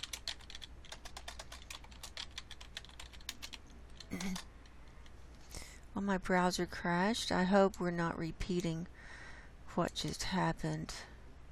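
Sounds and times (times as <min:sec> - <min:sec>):
typing a message on a computer keyboard: 0:00.0 - 0:04.4
speech: 0:04.1 - 0:04.5, 0:06.0 - 0:09.2, 0:09.8 - 0:11.1.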